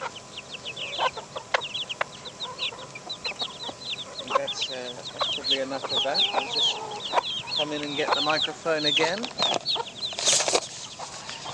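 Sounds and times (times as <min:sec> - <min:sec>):
chickens clucking: 0:00.0 - 0:11.5
speech: 0:04.8 - 0:09.6.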